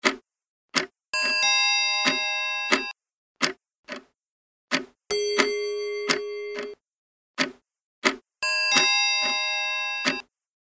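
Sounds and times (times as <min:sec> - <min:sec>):
clock ticking seconds: 0:00.0 - 0:00.2, 0:00.8 - 0:04.1, 0:04.7 - 0:06.8, 0:07.4 - 0:10.2.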